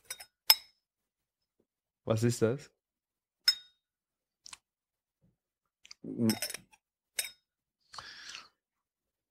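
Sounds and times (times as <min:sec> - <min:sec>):
speech: 0:02.1 - 0:02.8, 0:06.2 - 0:06.6
small glass lid clinking against a whisky nosing glass: 0:06.3 - 0:07.4.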